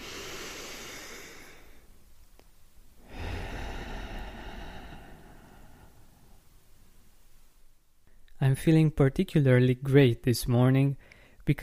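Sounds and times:
deep breath in and out: 0.0s - 1.9s, 3.0s - 6.8s, 11.0s - 11.4s
speech: 8.4s - 11.6s.

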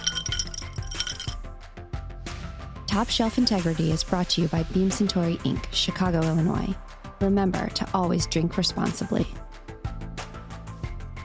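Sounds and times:
glasses clinking together in a toast: 0.0s - 1.4s
speech: 2.9s - 9.4s.

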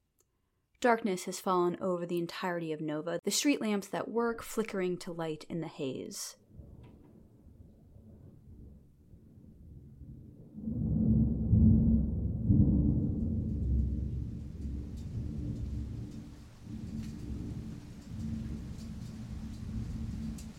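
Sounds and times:
speech: 0.8s - 6.4s
deep low rumble of thunder: 6.5s - 20.5s
heavy rain downpour: 12.9s - 20.5s.

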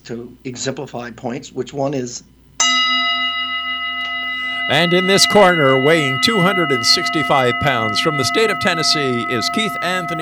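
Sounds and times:
speech: 0.0s - 2.4s, 4.7s - 10.1s
small bell ringing: 2.6s - 10.1s.

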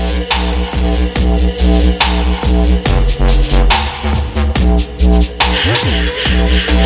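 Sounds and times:
electronic dubstep music from a smart speaker: 0.0s - 6.8s
pounding booming 808 bass: 0.0s - 6.8s.

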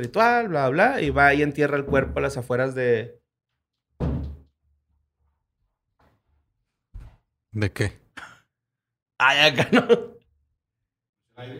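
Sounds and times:
speech: 0.0s - 3.2s, 7.6s - 8.3s, 9.2s - 10.1s, 11.4s - 11.5s
door on a set moving by itself and thudding: 1.7s - 2.4s, 4.0s - 4.5s.

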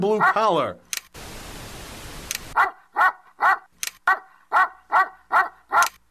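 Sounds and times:
speech: 0.0s - 1.0s
dog barking from a television through a home theater unit: 0.2s - 0.5s, 2.6s - 6.0s.

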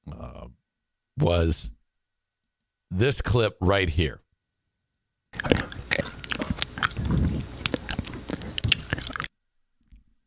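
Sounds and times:
speech: 1.2s - 1.8s, 2.9s - 4.2s
wet mouth noises from a man: 5.4s - 10.0s.

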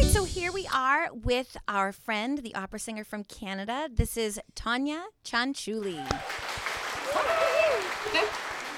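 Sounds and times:
speech: 0.1s - 6.4s
small group clapping hands: 5.9s - 8.7s
voices whooping and calling out: 6.0s - 8.7s.

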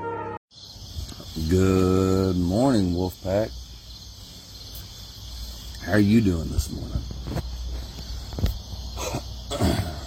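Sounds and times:
speech: 1.4s - 3.6s, 5.9s - 7.4s
rough guttural throat clearing: 9.0s - 10.0s.

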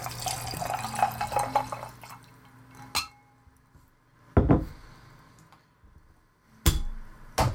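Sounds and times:
Pendleton whisky glugging into a glass: 0.0s - 2.9s.

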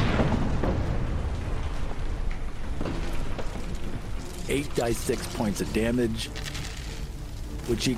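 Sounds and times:
loud roaring fireball explosion: 0.0s - 3.8s
speech: 4.5s - 6.6s, 7.7s - 7.9s.

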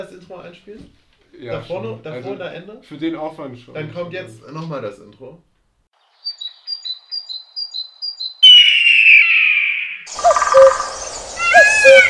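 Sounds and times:
speech: 0.0s - 5.5s
birds chirping: 6.0s - 12.0s.

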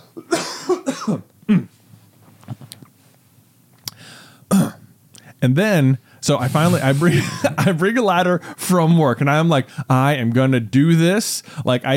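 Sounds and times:
person coughing: 0.0s - 1.7s, 4.5s - 4.8s
speech: 0.2s - 0.4s, 1.0s - 1.7s, 5.4s - 11.9s.

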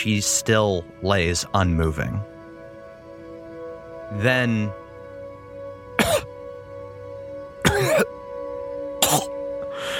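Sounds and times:
speech: 0.0s - 2.3s, 4.1s - 4.8s
person coughing and sputtering: 6.0s - 6.3s, 7.6s - 8.2s, 9.0s - 9.4s.

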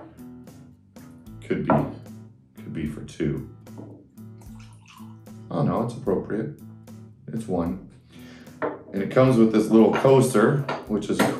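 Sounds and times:
speech: 1.5s - 2.0s, 2.8s - 3.9s, 5.5s - 6.6s, 7.3s - 7.9s, 8.9s - 11.3s
rye whiskey pouring into a glass: 4.4s - 5.4s.

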